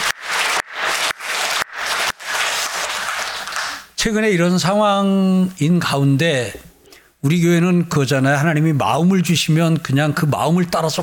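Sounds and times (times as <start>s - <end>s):
church audience applauding: 0.0s - 3.9s
speech: 4.0s - 11.0s.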